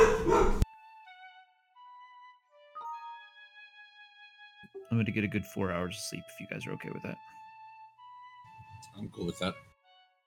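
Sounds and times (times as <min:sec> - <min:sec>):
dog whining and howling: 0:00.0 - 0:00.6
speech: 0:05.0 - 0:07.4, 0:09.0 - 0:09.7.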